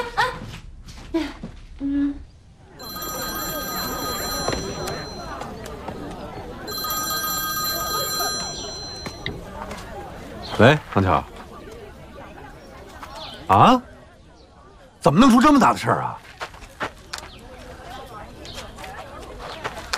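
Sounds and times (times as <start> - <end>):
crowd chatter and voices: 2.4 - 19.9
telephone ringing during an outgoing call: 2.7 - 9.9
speech: 10.6 - 11.3, 13.5 - 13.8, 15.0 - 16.2.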